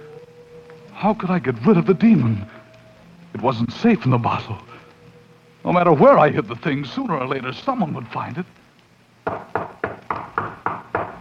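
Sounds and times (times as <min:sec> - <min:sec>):
speech: 0:01.0 - 0:02.5, 0:03.3 - 0:04.7, 0:05.6 - 0:08.6
firm knocking on a door: 0:09.2 - 0:11.1.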